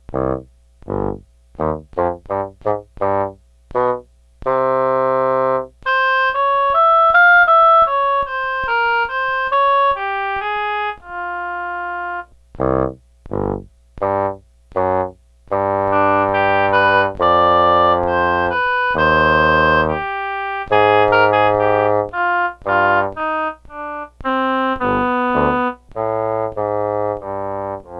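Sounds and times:
bassoon: 0.1 - 27.9
oboe: 5.6 - 27.9.

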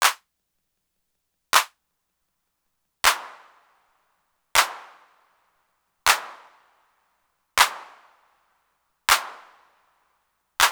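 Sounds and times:
Roland TR-808 hand clap sample: 0.0 - 0.2, 1.6 - 1.8, 3.0 - 3.3, 4.6 - 4.8.

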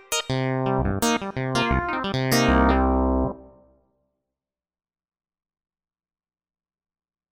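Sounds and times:
synth pulse clavi tone: 0.3 - 3.7.

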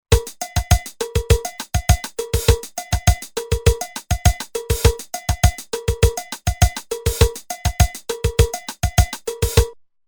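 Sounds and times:
Roland TR-505 drum machine bossa nova rhythm: 0.0 - 9.8.

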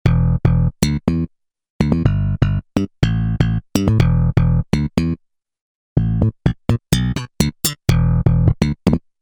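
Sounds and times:
thumping synth bass factory patch: 0.1 - 0.8, 1.9 - 4.8, 6.0 - 8.9.

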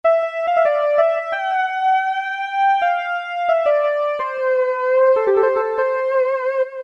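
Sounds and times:
monotone synth lead: 0.1 - 6.8.

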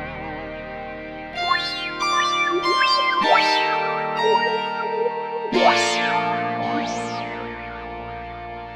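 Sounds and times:
Roland SC-880 acid panner synth patch: 1.4 - 7.9.

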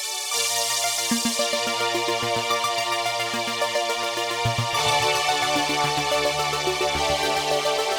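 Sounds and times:
retro synth strings on a Korg Radias-R: 0.3 - 7.9.

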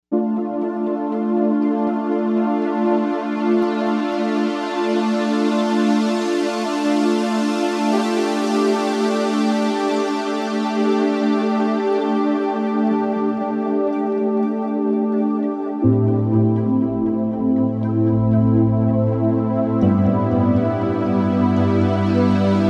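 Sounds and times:
Evolution Pad on Novation UltraNova synthesizer: 0.1 - 22.6.

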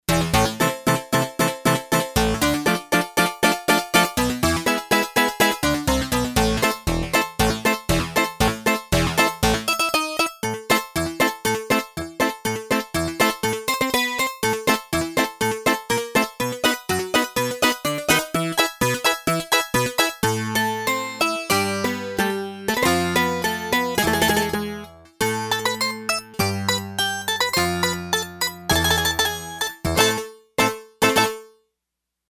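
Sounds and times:
harpsichord sound from Yamaha TX802 synthesizer: 0.1 - 31.4.

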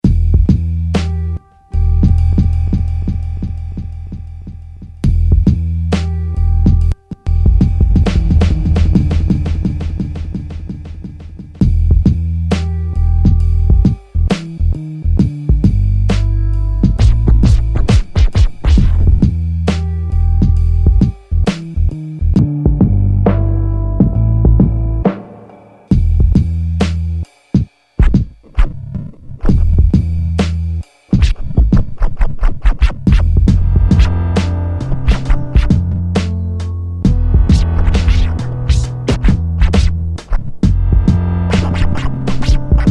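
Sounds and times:
trip hop music on a Yamaha DJX-IIB keyboard: 0.0 - 27.2, 28.0 - 42.9.

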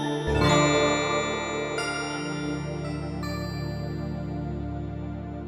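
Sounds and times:
Alesis Z3 synthesizer tone: 0.2 - 5.4.

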